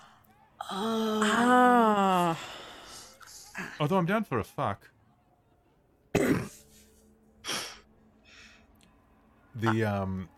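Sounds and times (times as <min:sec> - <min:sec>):
speech: 0:00.7 - 0:01.4, 0:03.8 - 0:05.0, 0:09.6 - 0:10.3
rowing man coughing and sputtering on fog: 0:06.1 - 0:06.6.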